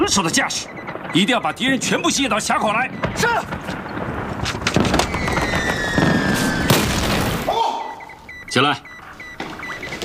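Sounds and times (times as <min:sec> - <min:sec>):
speech: 0:00.0 - 0:03.8, 0:08.5 - 0:08.9
heavy enemy artillery shell explosions: 0:00.0 - 0:07.5.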